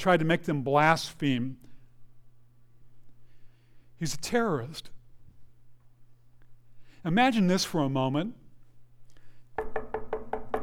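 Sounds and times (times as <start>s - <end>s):
speech: 0.0s - 1.7s, 4.0s - 4.9s, 7.0s - 8.4s
firm resonant knocking on a door: 9.6s - 10.6s.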